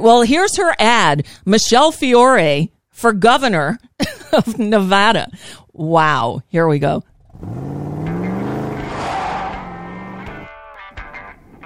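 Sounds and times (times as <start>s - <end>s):
speech: 0.0s - 7.8s
pickup truck engine revving: 7.1s - 11.6s.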